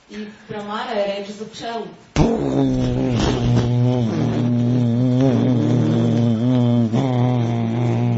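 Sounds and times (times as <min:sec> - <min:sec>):
person chanting Om as a low hum imitating a buzzing bee: 0:02.2 - 0:08.1.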